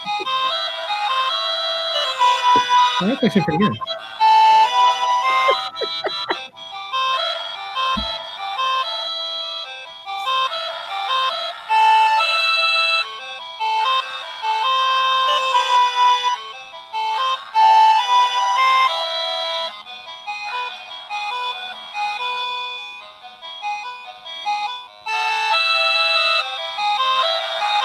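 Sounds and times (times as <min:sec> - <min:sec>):
laughter: 0:00.0 - 0:00.5, 0:05.2 - 0:06.5
chiptune-like video game soundtrack with high-pitched synth notes: 0:00.0 - 0:27.8
speech: 0:03.0 - 0:04.0.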